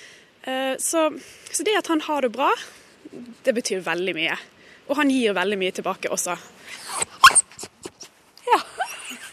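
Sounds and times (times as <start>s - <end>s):
speech: 0.8s - 7.1s
dog yipping and grumbling: 6.8s - 8.1s.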